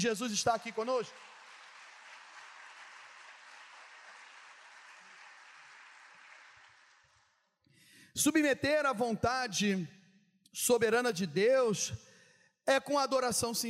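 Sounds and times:
speech: 0:00.0 - 0:01.3, 0:08.2 - 0:13.6
large audience applauding during a worship service at night: 0:00.7 - 0:07.4.

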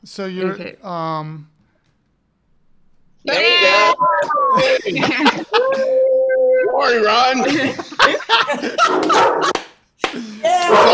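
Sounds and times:
speech: 0:00.0 - 0:01.5, 0:03.2 - 0:06.1, 0:06.7 - 0:10.9
excited people talking: 0:03.2 - 0:07.8
laughter: 0:03.2 - 0:10.9
dog barking in sharp loud bursts: 0:08.8 - 0:09.6.

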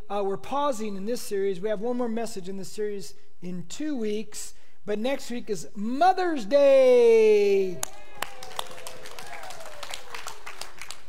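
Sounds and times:
speech: 0:00.1 - 0:08.1
sparse scattered handclaps from an audience: 0:07.8 - 0:11.0.

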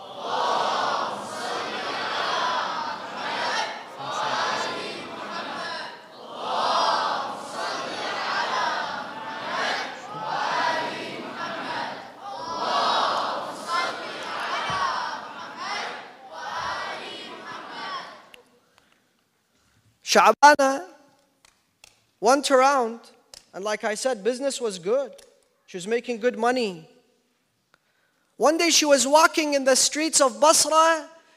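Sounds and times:
congregation loudly chanting salawat in unison at a religious gathering: 0:00.0 - 0:18.5
speech: 0:20.1 - 0:20.6, 0:22.3 - 0:26.9, 0:28.4 - 0:31.1.

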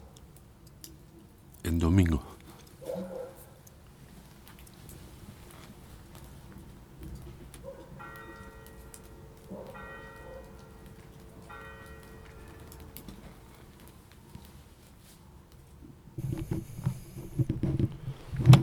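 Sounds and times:
speech: 0:01.7 - 0:02.3
church bells ringing: 0:08.0 - 0:13.6
light rain hissing: 0:16.2 - 0:18.6.

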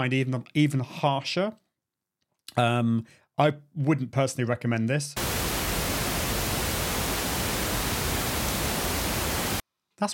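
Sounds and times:
speech: 0:00.0 - 0:01.6, 0:02.5 - 0:05.3
pink noise hiss: 0:05.2 - 0:09.6.

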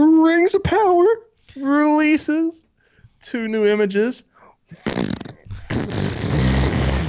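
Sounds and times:
speech: 0:00.0 - 0:02.6, 0:03.2 - 0:05.0
fart sound effect: 0:04.8 - 0:07.0.

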